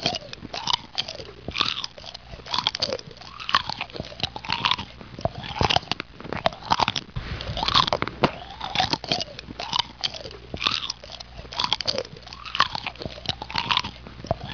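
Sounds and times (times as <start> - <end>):
eating: 0.0 - 14.5.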